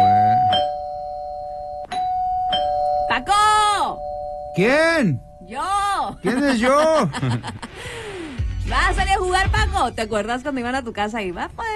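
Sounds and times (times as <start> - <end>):
electronic doorbell chiming: 0.0 - 5.9
speech: 4.6 - 7.7, 8.7 - 11.7
laughter: 6.2 - 7.8.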